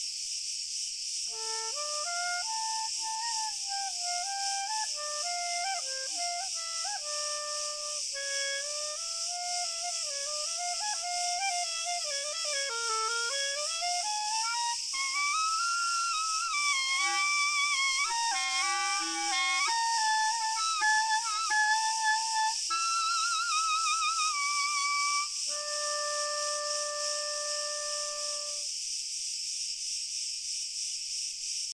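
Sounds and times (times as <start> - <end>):
crickets chirping: 0.0 - 31.7.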